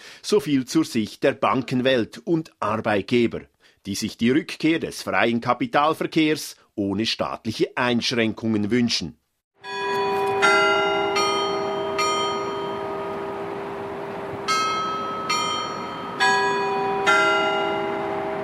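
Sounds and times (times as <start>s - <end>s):
speech: 0.3s - 9.2s
church bells ringing in a peal: 9.6s - 18.4s.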